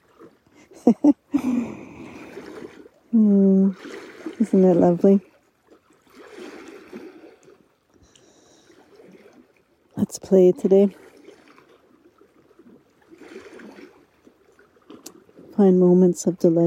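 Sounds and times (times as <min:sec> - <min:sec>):
soft steady trickling water: 0:00.0 - 0:16.6
person laughing: 0:00.6 - 0:02.0
speech: 0:00.8 - 0:01.9, 0:03.1 - 0:05.3, 0:10.1 - 0:11.0, 0:15.6 - 0:16.6.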